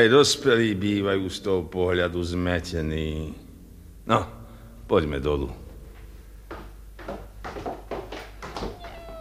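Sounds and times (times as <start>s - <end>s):
speech: 0.0s - 3.4s, 4.0s - 5.6s
faint low hum: 0.0s - 9.1s
kittens mewing: 8.6s - 9.1s.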